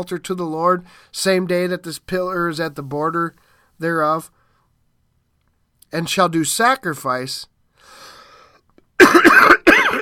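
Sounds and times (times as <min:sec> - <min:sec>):
speech: 0:00.0 - 0:04.4, 0:05.9 - 0:08.1
person coughing and clearing throat: 0:09.0 - 0:09.9.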